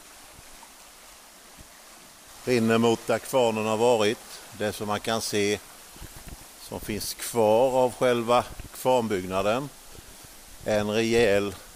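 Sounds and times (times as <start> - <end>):
stream water flowing down from a lake toward a former mill: 0.0 - 11.7
speech: 2.4 - 5.7, 6.7 - 9.8, 10.6 - 11.6.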